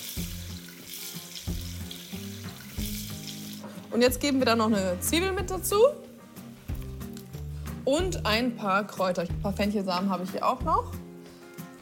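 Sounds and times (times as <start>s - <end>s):
broth pouring into a hot frying pan of browned chicken legs: 0.0s - 3.9s
crackling sizzle of chicken legs and spices in a frying pan: 0.0s - 7.9s
speech: 3.9s - 6.1s, 7.9s - 11.0s.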